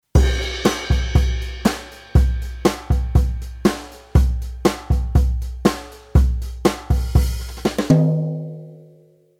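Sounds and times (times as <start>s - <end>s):
jazz brush rhythm kit: 0.0s - 8.9s.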